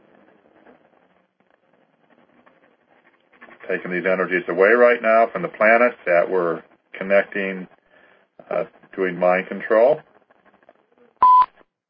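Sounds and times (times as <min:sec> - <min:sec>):
speech: 0:03.7 - 0:07.7, 0:08.5 - 0:10.1
electronic beep of a caller joining the phone line: 0:11.2 - 0:11.5.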